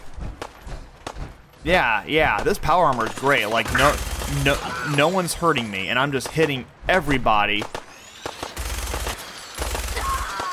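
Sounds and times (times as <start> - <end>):
speech: 1.6 - 7.8
rapid automatic gunfire in a shooter video game: 2.9 - 5.2, 7.6 - 10.5.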